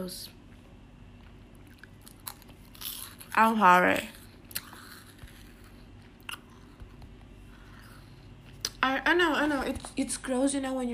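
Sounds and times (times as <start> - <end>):
speech: 0.0 - 0.4, 3.4 - 4.2, 8.8 - 10.9
low steady hum: 0.0 - 10.9
chewing with crunchy bites: 1.1 - 8.8.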